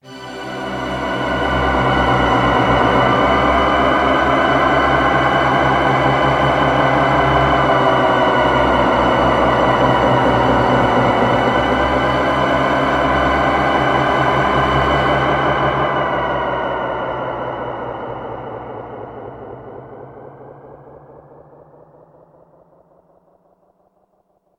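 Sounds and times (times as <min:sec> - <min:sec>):
poly synth pad e1005: 0:00.0 - 0:23.1.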